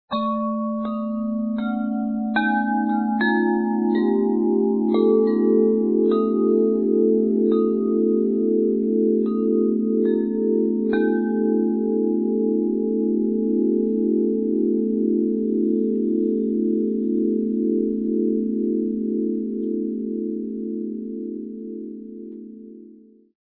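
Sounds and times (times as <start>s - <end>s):
wind chime: 0.1s - 17.8s
bass: 0.1s - 22.9s.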